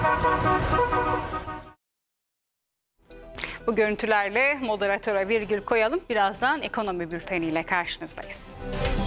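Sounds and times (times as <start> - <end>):
classic car horns blaring: 0.0 - 1.8
speech: 3.7 - 9.0.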